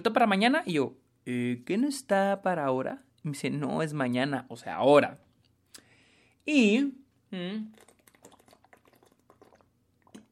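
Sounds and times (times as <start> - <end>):
speech: 0.0 - 5.2, 6.4 - 7.9
person drinking water: 7.6 - 10.2.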